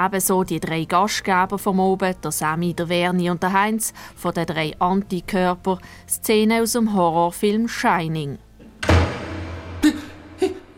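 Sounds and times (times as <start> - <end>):
speech: 0.0 - 8.4
sharper smaller knocks or bangs: 8.6 - 10.7
heavy door slamming shut in an empty hotel: 8.8 - 10.7.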